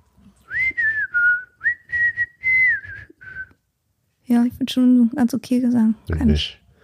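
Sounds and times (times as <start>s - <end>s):
person whistling a short wavering melody: 0.5s - 3.6s
speech: 4.3s - 6.6s.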